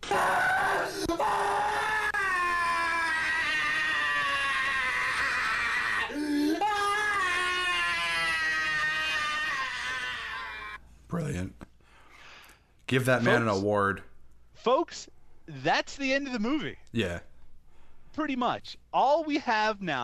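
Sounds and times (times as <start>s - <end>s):
man screaming loudly and continuously: 0.0s - 10.8s
speech: 12.9s - 17.3s, 18.2s - 20.0s.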